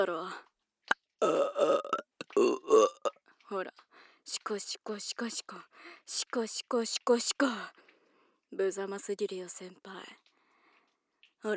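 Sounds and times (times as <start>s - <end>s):
speech: 0.0s - 0.5s, 3.5s - 7.8s, 8.5s - 10.2s
low rough drawn-out burps: 1.2s - 3.2s.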